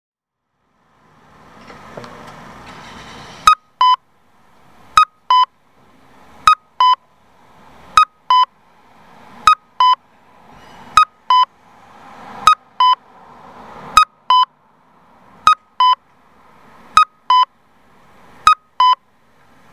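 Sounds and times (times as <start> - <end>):
cuckoo call pedestrian traffic signal: 2.8 - 4.0, 5.0 - 5.6, 6.4 - 7.1, 7.9 - 8.6, 9.4 - 11.6, 14.0 - 14.6, 15.4 - 16.0, 16.9 - 17.6, 18.4 - 19.1.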